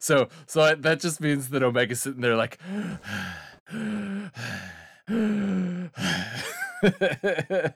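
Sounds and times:
speech: 0.0 - 4.5, 6.8 - 7.7
person panting with short gasps: 2.6 - 6.5
person performing heavy drawn-out breaths: 2.6 - 6.5
person sighing: 2.6 - 6.5
laughter: 6.4 - 7.7.

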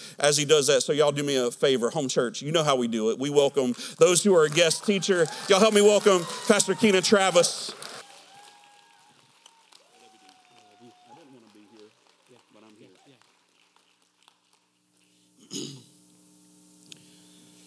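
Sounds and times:
speech: 0.2 - 7.9
gruff throat clearing: 15.4 - 16.0.

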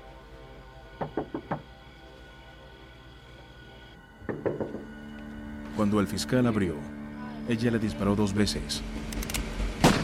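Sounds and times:
knocking on a door: 1.0 - 1.7, 4.2 - 4.9
speech: 5.8 - 9.1.

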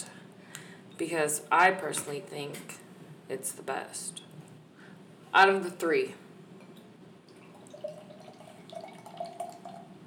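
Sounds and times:
speech: 1.0 - 4.2, 5.3 - 6.2
drink pouring into a glass with bubbling gurgles: 7.3 - 10.0.

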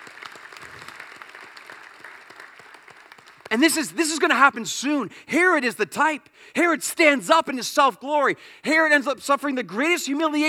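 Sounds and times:
audience clapping: 0.0 - 4.7
speech: 3.5 - 10.4.

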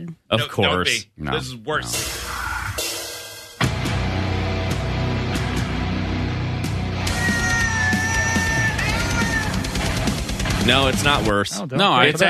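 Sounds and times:
speech: 0.3 - 2.2, 10.6 - 12.2
high wailing screaming tones over heavy metal: 1.8 - 3.2, 7.0 - 9.9
distorted guitars in heavy metal: 1.8 - 11.4.

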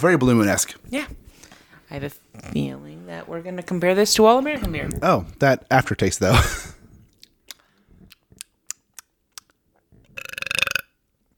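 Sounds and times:
speech: 0.0 - 1.2, 1.9 - 6.7
faint mouth noises: 2.3 - 2.8, 6.9 - 10.9
loud raspy burp after drinking beer: 10.1 - 11.0.

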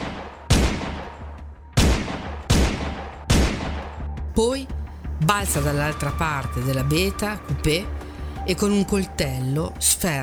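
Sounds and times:
gunfire aimed at the windscreen and side window of a car: 0.0 - 4.0
speech: 4.4 - 10.2.

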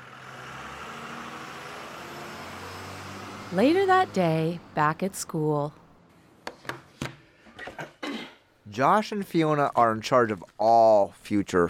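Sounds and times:
large bus engine running and driving off: 0.0 - 5.9
speech: 3.5 - 5.8, 8.8 - 11.6.

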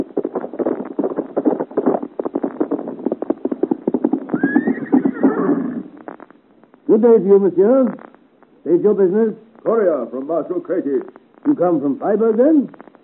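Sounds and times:
ridden horse galloping hard along a road: 0.0 - 7.3
horse whinnying: 4.3 - 6.0
speech: 6.9 - 8.0, 8.6 - 12.8.

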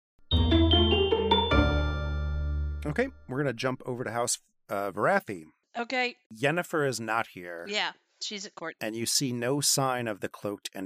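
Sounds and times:
bell ringing: 0.3 - 3.2
speech: 2.8 - 10.8.

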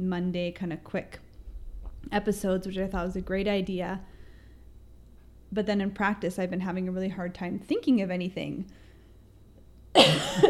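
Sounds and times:
speech: 0.1 - 1.2, 2.0 - 4.1, 5.5 - 8.9, 10.0 - 10.4
person coughing harshly: 10.0 - 10.4.

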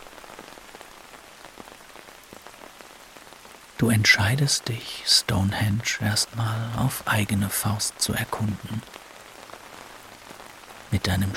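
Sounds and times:
steady rain near Stonehenge falling on a surface: 0.0 - 11.3
speech: 3.8 - 9.0, 10.9 - 11.3.

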